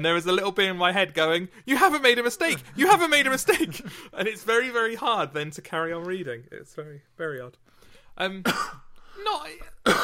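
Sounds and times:
speech: 0:00.0 - 0:10.0
person coughing: 0:08.4 - 0:08.9, 0:09.8 - 0:10.0.

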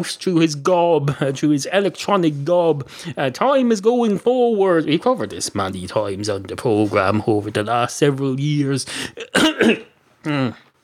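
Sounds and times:
speech: 0:00.0 - 0:10.7
coughing into a microphone: 0:09.2 - 0:10.6
throat clearing: 0:09.2 - 0:10.7.

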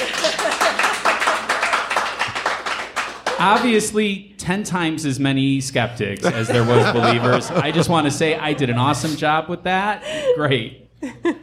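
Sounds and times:
laughter: 0:00.0 - 0:01.6, 0:06.2 - 0:09.3, 0:09.9 - 0:11.4
audience applause at a live show: 0:00.0 - 0:03.8
speech: 0:03.4 - 0:11.4.

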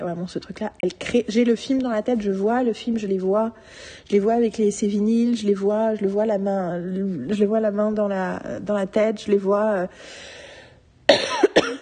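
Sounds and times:
speech: 0:00.0 - 0:10.4
harsh raspy coughs: 0:11.1 - 0:11.8.

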